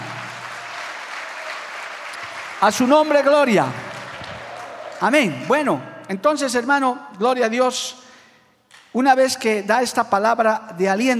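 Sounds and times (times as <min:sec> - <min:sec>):
church audience applauding: 0:00.0 - 0:05.7
speech: 0:02.6 - 0:03.8, 0:05.0 - 0:08.0, 0:08.9 - 0:11.1.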